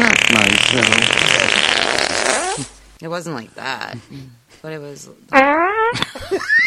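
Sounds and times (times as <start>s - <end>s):
short squeaky fart with a rising whistling pitch: 0.0s - 2.8s, 5.3s - 6.6s
speech: 3.0s - 6.6s.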